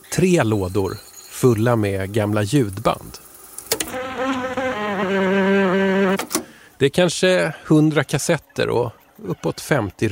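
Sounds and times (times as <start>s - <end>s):
speech: 0.2s - 3.3s, 6.8s - 10.1s
large bumblebee queen buzzing: 3.6s - 6.4s.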